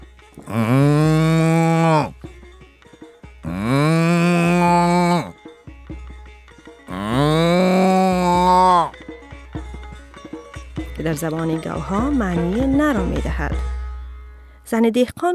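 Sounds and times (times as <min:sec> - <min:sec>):
cow mooing: 0:00.4 - 0:02.2, 0:03.4 - 0:05.3, 0:06.9 - 0:08.9
speech: 0:00.5 - 0:00.8, 0:11.1 - 0:13.7, 0:14.7 - 0:15.3.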